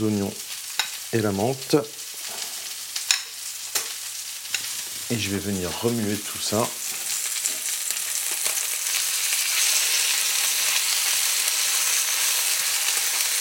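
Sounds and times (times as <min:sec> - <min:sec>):
speech: 0:00.0 - 0:00.5, 0:01.1 - 0:02.0, 0:05.1 - 0:06.8
meat sizzling as it browns in a frying pan: 0:00.0 - 0:13.4.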